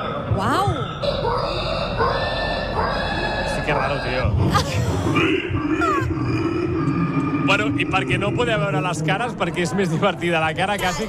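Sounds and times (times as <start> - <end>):
people imitating pig grunts and squeals with their voices: 0.0 - 8.8
speech: 3.7 - 11.0.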